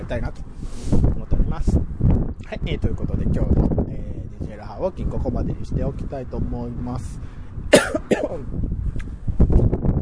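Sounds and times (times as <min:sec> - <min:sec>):
speech: 0:00.1 - 0:07.4, 0:08.2 - 0:09.0
harsh coughs from corn caught in the throat: 0:07.7 - 0:08.5.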